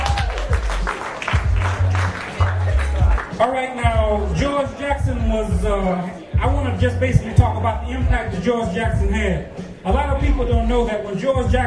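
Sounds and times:
audience applause: 0.0 - 3.4
speech: 3.4 - 11.6.

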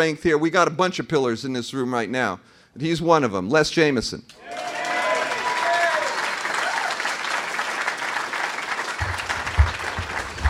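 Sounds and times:
speech: 0.0 - 4.8
crowd applauding to welcome a speaker: 4.4 - 10.4
low thumps and rumbles: 9.0 - 10.4.

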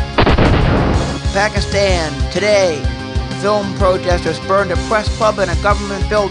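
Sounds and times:
police guns firing into the air at a protest: 0.2 - 1.6
speech: 1.4 - 6.3.

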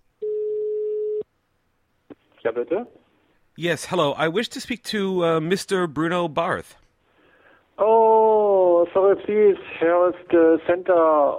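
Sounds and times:
telephone ring tone as an outgoing call is placed: 0.2 - 1.2
speech: 2.4 - 6.8, 7.8 - 8.0, 8.9 - 11.3.

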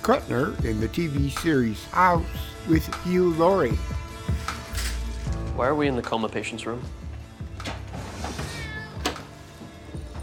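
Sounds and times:
speech: 0.0 - 4.0, 5.6 - 7.0
cat meowing in a coma patient's room: 8.3 - 9.2.

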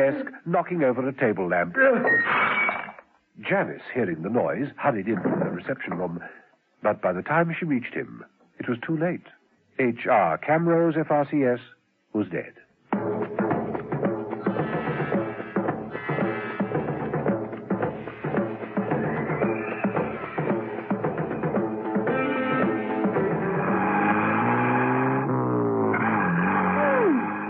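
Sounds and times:
speech: 0.0 - 2.6, 3.4 - 13.2
car engine droning and revving while driving: 14.4 - 27.4.

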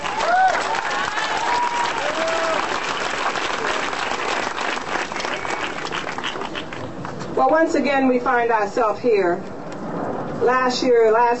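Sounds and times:
crowd whooping: 0.0 - 3.0
audience applauding: 0.0 - 6.9
speech: 7.4 - 9.5, 10.4 - 11.3.

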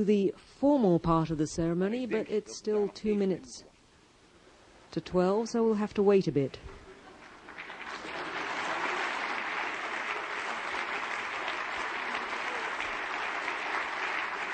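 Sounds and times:
speech: 0.0 - 3.7, 4.9 - 6.8
large audience clapping at a partnership ceremony: 7.0 - 14.5.

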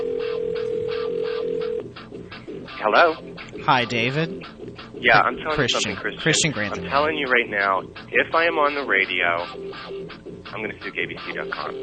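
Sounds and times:
telephone line tone humming: 0.0 - 1.9
speech: 2.8 - 11.8.

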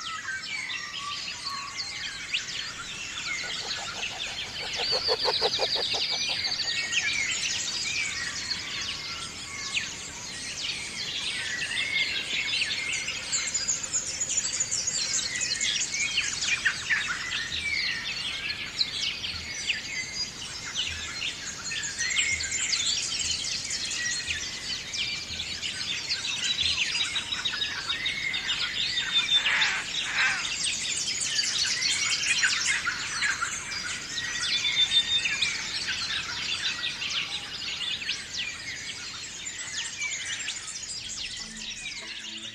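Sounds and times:
dawn chorus of many birds chirping and trilling: 0.0 - 42.5.

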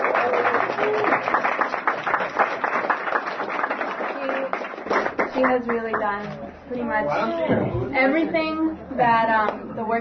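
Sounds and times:
roomful of people clapping: 0.0 - 6.2
speech: 5.4 - 9.9.

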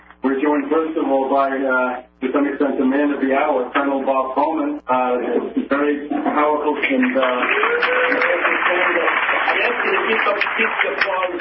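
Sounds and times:
speech: 0.6 - 11.4
clapping from a sizable crowd: 6.8 - 11.4.

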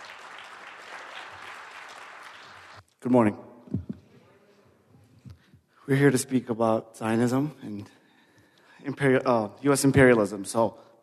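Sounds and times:
audience applauding panelists at a panel event: 0.0 - 2.8
speech: 3.0 - 3.9, 5.9 - 8.0, 8.9 - 10.9.

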